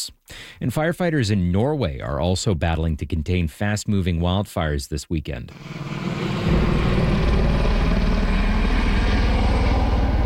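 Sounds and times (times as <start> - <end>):
speech: 0.0 - 6.7
helicopter rotor thumping while dropping water on fire: 5.5 - 10.2.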